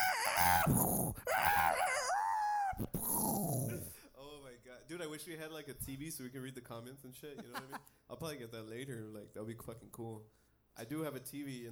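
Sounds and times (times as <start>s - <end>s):
roosters crowing: 0.0s - 2.9s
speech: 0.6s - 1.3s, 4.8s - 11.7s.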